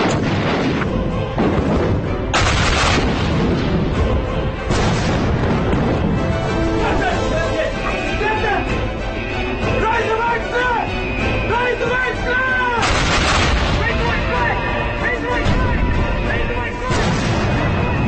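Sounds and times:
cannon battery firing artillery at British warships: 0.0s - 3.8s, 4.7s - 6.3s, 12.8s - 14.0s, 16.9s - 17.8s
voices: 6.7s - 12.9s, 13.6s - 17.9s.

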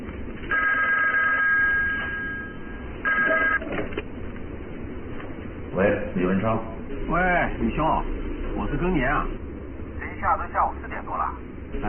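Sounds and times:
electronic telephone ring tones on an outgoing call through a handset: 0.5s - 3.6s
speech: 5.8s - 9.4s, 10.2s - 11.8s.

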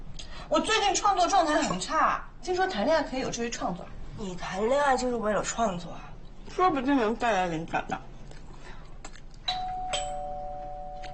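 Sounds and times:
speech: 0.5s - 8.1s
doorbell ringing with a two-note ding-dong chime indoors: 9.5s - 11.1s.

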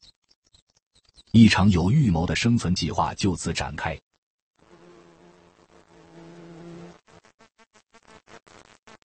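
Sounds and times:
speech: 1.3s - 4.1s
bumblebee buzzing in flight: 4.6s - 9.0s.

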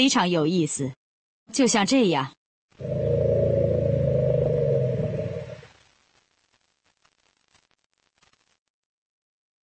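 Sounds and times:
speech: 0.0s - 3.3s
elephants roaring while greeting each other in a park: 2.8s - 5.7s.

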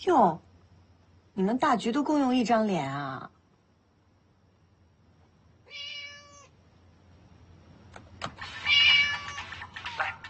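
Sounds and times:
speech: 0.0s - 0.4s, 1.4s - 3.4s
orange tabby cat meowing: 5.6s - 6.6s, 8.4s - 9.7s.

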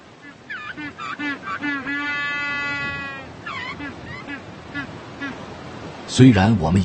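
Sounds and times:
penguin braying like a donkey: 0.2s - 5.4s
speech: 6.1s - 6.8s.

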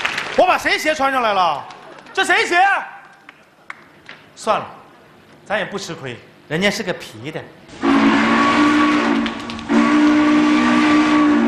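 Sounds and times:
speech: 0.4s - 3.0s, 4.4s - 4.8s, 5.5s - 7.9s
steam train whistle as train departs: 7.7s - 11.4s.

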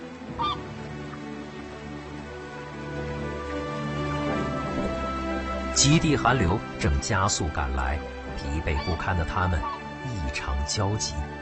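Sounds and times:
flock of swans honking: 0.0s - 5.8s, 8.0s - 10.0s
speech: 5.8s - 11.4s.

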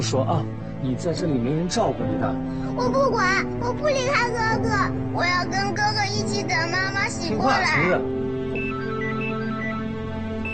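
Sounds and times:
speech: 0.0s - 8.2s
phone ringtone of short high electronic tones: 8.5s - 10.5s.

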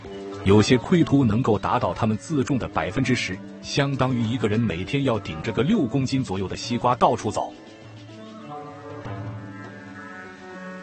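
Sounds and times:
speech: 0.4s - 7.6s
hornbill honking: 7.2s - 10.8s.

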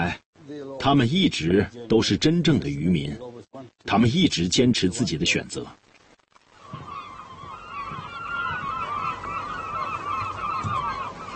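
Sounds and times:
speech: 0.1s - 5.8s
flock of seagulls calling around a fishing boat: 6.5s - 11.3s.

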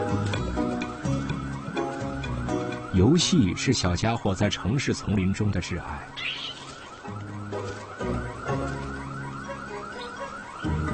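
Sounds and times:
electronic anti-theft alarm blaring: 0.0s - 10.9s
speech: 3.0s - 6.5s.

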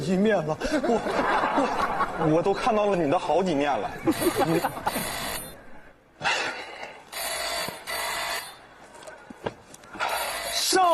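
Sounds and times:
faint noise: 0.0s - 10.9s
speech: 0.1s - 5.2s
laughter: 0.6s - 2.6s, 3.7s - 5.3s
telephone bell ringing in rattling bursts: 4.1s - 5.6s, 7.1s - 8.7s, 10.0s - 10.9s.

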